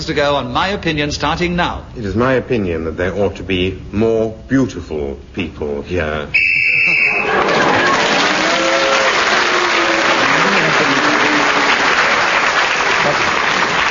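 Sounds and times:
speech: 0.0s - 7.7s
shrill timer whistle blast: 6.3s - 8.0s
people cheering: 6.4s - 13.8s
people laughing: 6.5s - 13.8s
loud steady audience applause: 6.9s - 13.8s.

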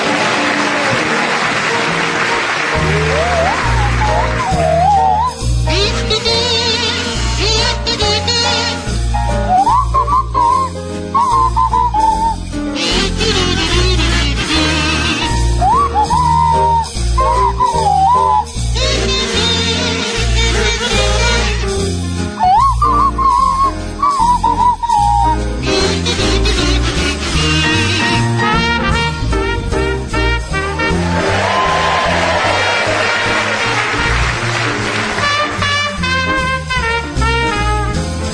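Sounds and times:
steady band accompaniment: 0.0s - 38.3s
sliding swanee whistles playing a bouncy tune: 3.3s - 5.5s, 9.4s - 12.4s, 15.6s - 18.6s, 22.4s - 25.5s.

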